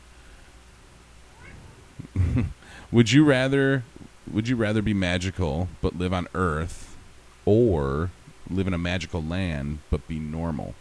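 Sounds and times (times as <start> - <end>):
low rumble: 0.0 - 10.7
cat meowing: 1.3 - 2.1
laughter: 2.0 - 2.6
speech: 2.4 - 10.7.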